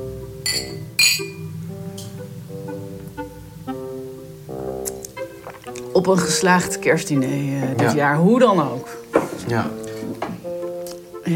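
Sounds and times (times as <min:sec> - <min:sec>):
glasses clinking together in a toast: 0:00.4 - 0:01.4
speech: 0:06.0 - 0:09.8.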